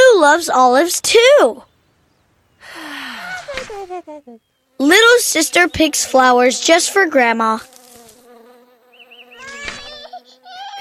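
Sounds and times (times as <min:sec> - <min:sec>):
speech: 0:00.2 - 0:01.7, 0:03.5 - 0:07.8
bee buzzing: 0:02.6 - 0:10.7
laughter: 0:02.8 - 0:04.4
rustling: 0:03.1 - 0:04.1, 0:07.6 - 0:08.5.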